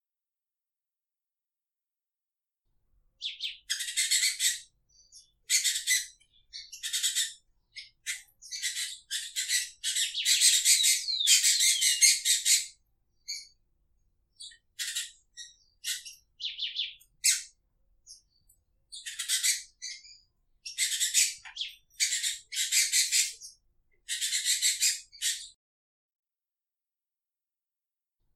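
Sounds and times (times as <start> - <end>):
female rufous-collared sparrow calling: 3.2 - 13.6, 14.3 - 25.6.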